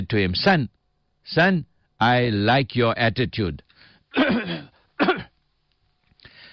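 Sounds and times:
speech: 0.0s - 5.1s
person imitating a cough: 4.2s - 5.4s
raspy throat clearing: 4.2s - 5.4s.

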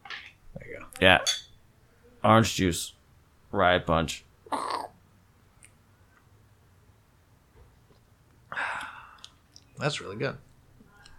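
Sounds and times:
speech: 1.0s - 1.4s, 2.2s - 4.6s, 9.8s - 10.5s
glasses clinking in a toast: 1.2s - 1.6s.

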